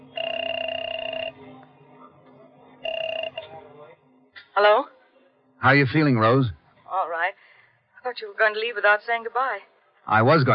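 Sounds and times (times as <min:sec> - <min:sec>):
telephone ringing tone heard from the caller's end of a call from an airport phone: 0:00.0 - 0:01.5, 0:02.8 - 0:03.6
faint room noise: 0:00.0 - 0:10.5
speech: 0:04.6 - 0:05.0, 0:05.6 - 0:06.6, 0:08.2 - 0:10.5.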